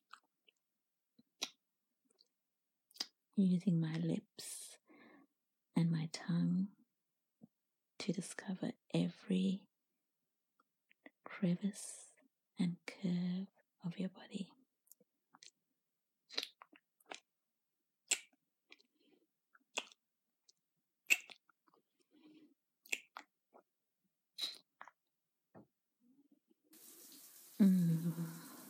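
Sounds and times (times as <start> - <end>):
speech: 3.4 - 4.7, 5.8 - 6.8, 8.0 - 9.7, 11.3 - 14.6
scattered wet clicks and small drips: 26.8 - 28.6.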